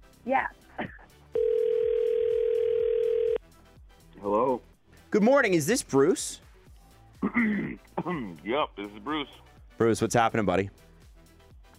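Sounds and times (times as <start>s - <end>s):
speech: 0.2s - 0.9s, 4.2s - 6.4s, 7.3s - 10.9s
steady telephone dial tone as a phone call is placed: 1.4s - 3.4s.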